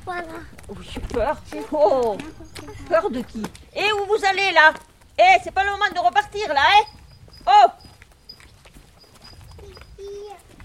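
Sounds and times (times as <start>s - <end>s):
low outdoor rumble: 0.0s - 7.2s
walking cows' hooves clopping: 0.0s - 10.6s
speech: 0.1s - 7.8s.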